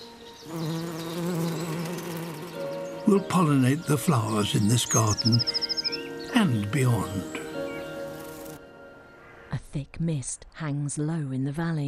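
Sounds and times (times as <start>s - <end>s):
bees buzzing: 0.3s - 8.9s
speech: 3.1s - 5.7s, 6.4s - 7.4s, 9.8s - 11.8s.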